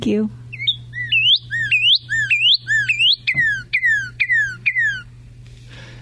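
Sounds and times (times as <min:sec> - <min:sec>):
speech: 0:00.0 - 0:00.4
low steady hum: 0:00.0 - 0:05.9
cardinal singing loud clear whistles: 0:00.5 - 0:05.1.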